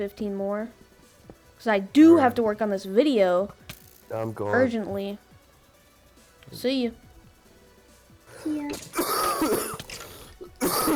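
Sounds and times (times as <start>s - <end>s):
speech: 0.0s - 0.9s, 1.6s - 5.2s, 6.5s - 7.0s, 8.4s - 9.7s
harsh raspy smoker's cough: 8.7s - 10.9s.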